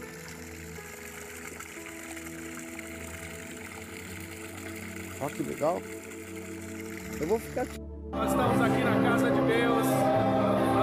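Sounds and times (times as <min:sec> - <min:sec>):
natural water pouring from a spout into a swimming pool: 0:00.0 - 0:07.8
speech: 0:05.2 - 0:06.0, 0:07.2 - 0:10.1.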